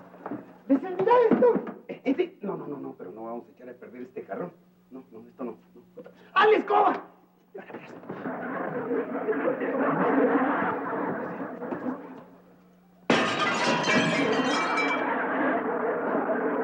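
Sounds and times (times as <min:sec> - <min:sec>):
speech: 0:00.9 - 0:11.0
laughter: 0:07.6 - 0:12.4, 0:14.4 - 0:16.6
glass window breaking: 0:13.1 - 0:15.1.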